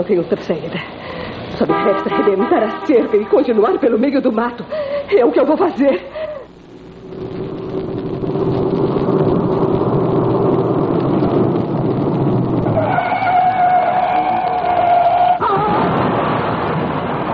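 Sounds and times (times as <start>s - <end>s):
speech: 0.0s - 6.3s
car engine roar: 7.0s - 17.2s
car tire screech: 12.0s - 16.0s.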